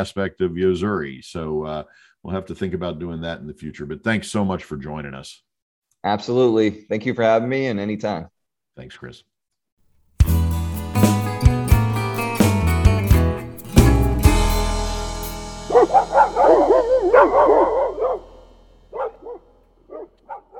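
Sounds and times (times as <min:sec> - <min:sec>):
speech: 0:00.0 - 0:09.3
music: 0:10.2 - 0:19.4
hound dogs barking and baying: 0:15.7 - 0:20.5.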